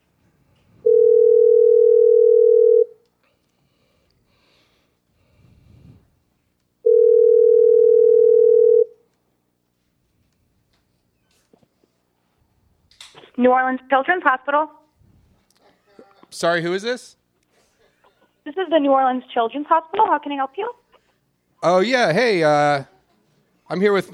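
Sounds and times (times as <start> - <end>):
telephone line tone: 0.8 - 3.0, 6.8 - 9.0
faint breathing: 3.2 - 6.2
speech: 13.4 - 14.8, 16.3 - 17.2, 18.5 - 20.8, 21.6 - 22.9, 23.7 - 24.1.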